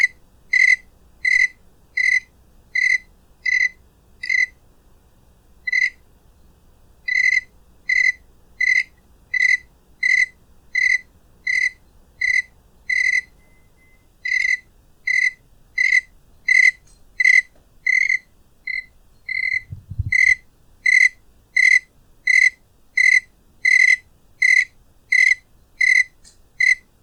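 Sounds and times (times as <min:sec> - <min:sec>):
single cricket chirping with clear ringing pulses: 0:00.5 - 0:04.6, 0:07.1 - 0:26.8
brief low thump: 0:19.7 - 0:20.4.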